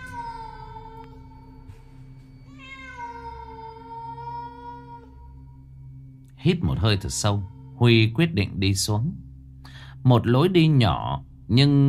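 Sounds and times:
cat meowing in a dark underground passage beneath a brick-covered stairway: 0.0 - 1.2, 2.5 - 5.2
speech: 6.4 - 9.3, 10.0 - 11.8.

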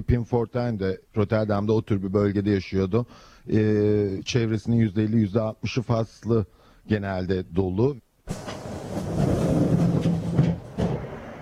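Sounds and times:
speech: 0.0 - 8.6
train running on rails toward The Hague in the Netherlands: 8.3 - 11.4.

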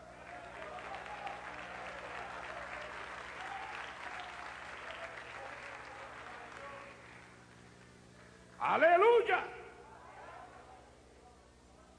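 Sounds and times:
church congregation applauding during a service: 0.0 - 7.9
speech: 8.6 - 9.6.

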